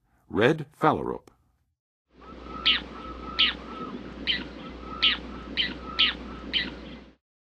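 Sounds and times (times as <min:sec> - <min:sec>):
Red Phalarope calling in the western USA: 0:02.2 - 0:07.1.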